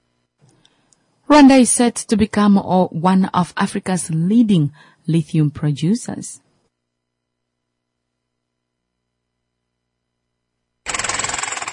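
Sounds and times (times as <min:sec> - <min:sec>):
speech: 0:01.3 - 0:06.4
pneumatic rock drill drilling inside a coltan mine in Rwanda: 0:10.9 - 0:11.7.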